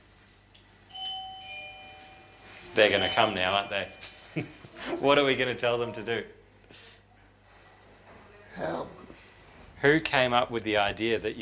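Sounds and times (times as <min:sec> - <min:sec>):
electronic two-tone doorbell chime in a shared residence: 0:00.9 - 0:04.3
speech: 0:02.8 - 0:06.4, 0:08.6 - 0:09.0, 0:09.8 - 0:11.4.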